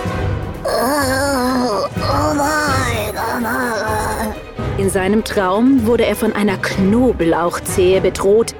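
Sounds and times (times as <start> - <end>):
man groaning in sleep: 0.6 - 4.4
speech: 4.8 - 8.5.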